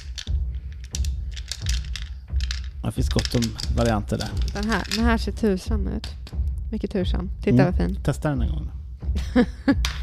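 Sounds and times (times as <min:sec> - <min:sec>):
dice clattering and rattling inside a dice jar while rummaged through: 0:00.0 - 0:05.2
speech: 0:02.9 - 0:10.0
laughter: 0:09.2 - 0:09.8.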